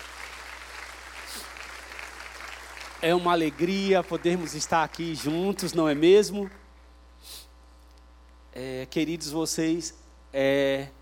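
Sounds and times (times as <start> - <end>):
faint steady hum: 0.0 - 11.0
person sniffling: 1.3 - 1.5, 7.2 - 7.6
speech: 3.0 - 6.6, 8.6 - 11.0.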